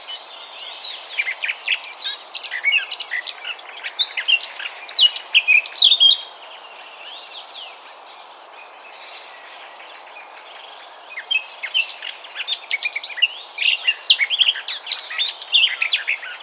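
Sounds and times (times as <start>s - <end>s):
Eurasian blackcap Sylvia atricapilla singing: 0.0s - 6.2s, 11.2s - 16.4s.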